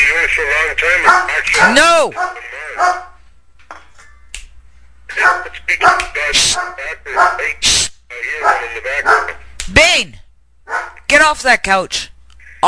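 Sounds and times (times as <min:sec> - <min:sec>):
speech: 0:00.3 - 0:03.1, 0:05.2 - 0:12.6
dog barking and yipping: 0:01.0 - 0:03.2, 0:05.1 - 0:07.5, 0:08.4 - 0:09.4, 0:10.7 - 0:11.0.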